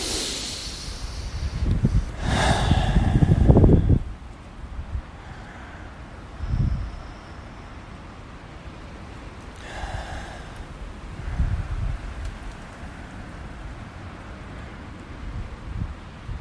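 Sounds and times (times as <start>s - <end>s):
deep breaths during a breathing exercise: 0.0s - 4.2s, 5.0s - 8.0s, 9.6s - 13.7s.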